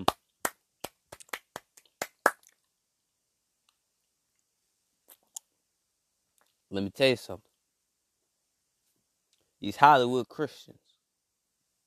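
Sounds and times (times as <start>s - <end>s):
hand claps: 0.0s - 2.6s
speech: 6.7s - 7.5s, 9.6s - 10.9s.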